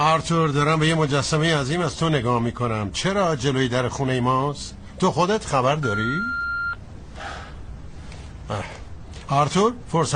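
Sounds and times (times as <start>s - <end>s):
speech: 0.0s - 6.4s, 8.5s - 10.1s
noisy background: 0.0s - 10.1s
answering machine beep: 5.8s - 6.8s.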